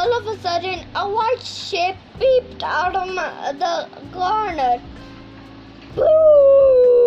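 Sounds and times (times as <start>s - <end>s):
speech: 0.2s - 5.1s, 6.0s - 6.8s
long eerie ghostly howl: 6.0s - 7.0s.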